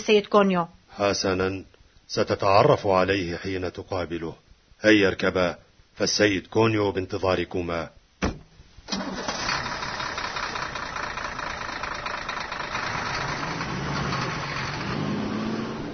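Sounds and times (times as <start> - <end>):
speech: 0.0 - 8.0, 8.9 - 9.3
strange unusual car engine starting and idling: 8.9 - 15.9.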